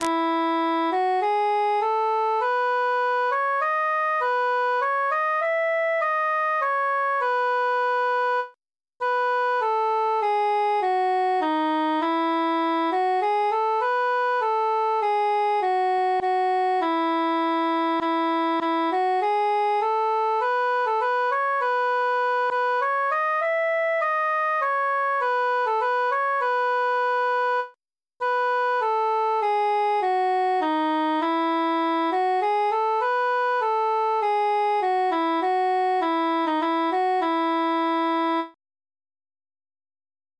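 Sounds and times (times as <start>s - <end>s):
transposed solo cantus melody: 0.0s - 38.6s.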